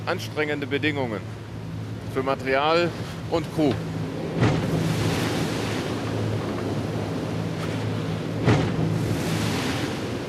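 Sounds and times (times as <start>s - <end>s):
speech: 0.0s - 1.4s, 2.1s - 4.5s
constant roar of wind: 0.0s - 10.2s
low engine-like hum: 0.0s - 10.2s
rushing water: 0.0s - 10.2s
sailboat bow slamming onto rough sea waves: 2.9s - 10.2s.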